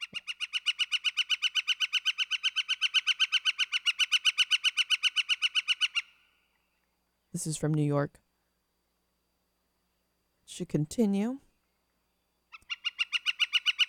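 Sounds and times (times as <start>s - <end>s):
northern flicker woodpecker rattling call in New York: 0.0s - 6.8s, 12.5s - 13.8s
speech: 7.4s - 8.2s, 10.6s - 11.4s.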